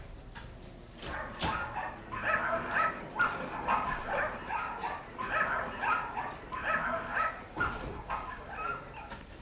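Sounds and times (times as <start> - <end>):
dogs barking, yelping and whimpering while dunked in a tub of diluted livestock insecticide: 1.0 - 9.2.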